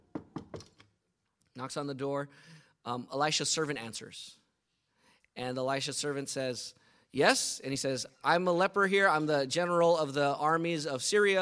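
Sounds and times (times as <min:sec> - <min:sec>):
knocking on a door: 0:00.0 - 0:00.7
speech: 0:01.6 - 0:04.4, 0:05.4 - 0:11.4.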